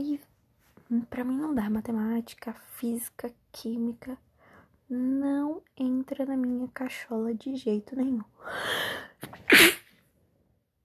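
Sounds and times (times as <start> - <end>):
speech: 0.9 - 4.3, 4.9 - 9.7
person sneezing: 9.2 - 9.9.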